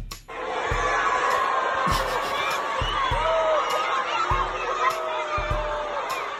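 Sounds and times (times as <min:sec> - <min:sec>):
large crowd of young students booing: 0:00.3 - 0:06.3
laughter: 0:00.3 - 0:06.3
sharp thuds or claps: 0:01.9 - 0:03.4.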